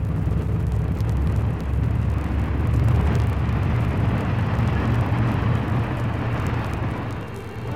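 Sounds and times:
car speeding toward a railway crossing: 0.0 - 7.7.

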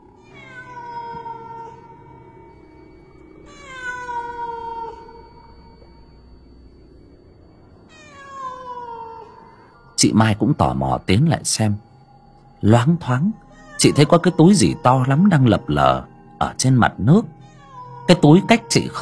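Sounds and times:
cat yowling mournfully by a temple pond at night: 0.0 - 2.2, 3.4 - 5.3, 7.9 - 9.6, 13.4 - 16.1, 17.2 - 19.0
low steady hum: 0.0 - 19.0
speech: 10.0 - 11.9, 12.6 - 17.4, 18.1 - 19.0.

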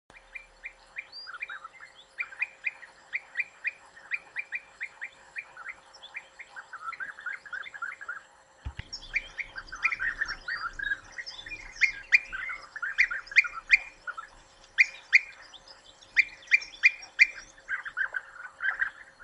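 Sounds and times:
European bee-eater calls: 0.2 - 19.2
sharp knock: 8.7 - 9.0.

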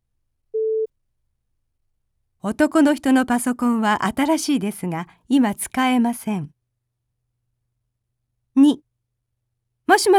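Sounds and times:
telephone line beep: 0.6 - 0.9
speech: 2.4 - 6.6, 8.6 - 8.8, 9.9 - 10.1.

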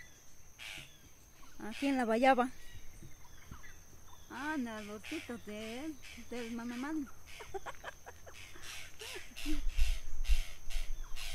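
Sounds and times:
tacataca bird giving harsh raspy calls: 0.6 - 1.0, 1.6 - 11.3
speech: 1.6 - 2.6, 4.4 - 7.9
laughter: 7.3 - 9.7.

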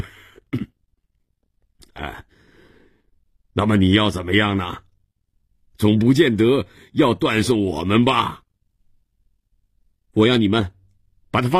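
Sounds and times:
man coughing quietly: 0.0 - 0.9
speech: 2.0 - 2.3, 3.6 - 4.9, 5.8 - 8.4, 10.1 - 11.5.

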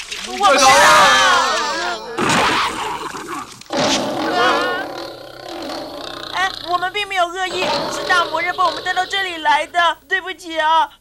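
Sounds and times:
speech: 0.3 - 1.1, 6.7 - 10.9
animated lion character roaring: 2.2 - 9.4.

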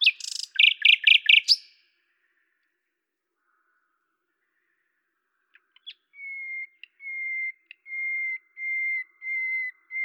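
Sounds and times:
common nightingale singing at Lavours, France: 0.0 - 2.0, 5.4 - 10.0.

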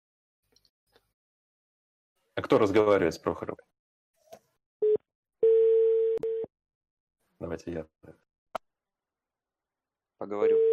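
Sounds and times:
speech: 2.4 - 3.8, 7.4 - 8.3, 10.2 - 10.7
short single telephone beep on an outgoing call: 4.8 - 6.5, 10.5 - 10.7.

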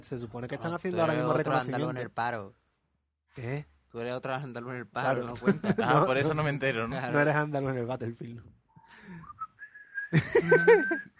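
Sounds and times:
speech: 0.0 - 2.6, 3.3 - 9.3, 10.1 - 11.1
laughter: 5.3 - 6.4, 10.1 - 11.1
person whistling casually: 8.8 - 11.1.

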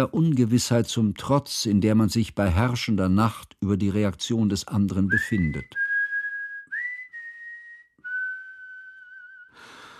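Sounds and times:
speech: 0.0 - 5.8
man whistling in a radio drama: 5.1 - 9.6.

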